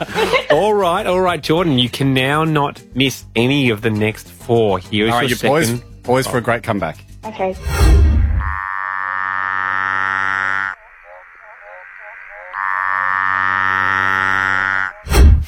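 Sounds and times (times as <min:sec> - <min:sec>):
laughter: 0:00.0 - 0:01.0
speech: 0:00.0 - 0:08.1
Litoria tree frog buzzing trills: 0:08.4 - 0:15.1.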